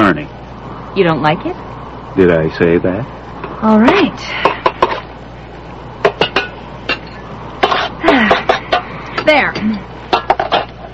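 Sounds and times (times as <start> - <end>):
speech: 0.1 - 0.4, 1.0 - 4.5, 9.3 - 9.9
dishes and cutlery clinking as chili con carne is served: 6.0 - 10.9.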